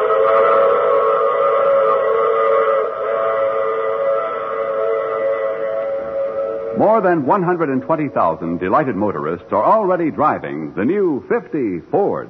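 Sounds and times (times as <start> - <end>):
train whistle blaring: 0.0 - 9.3
speech: 6.8 - 12.2.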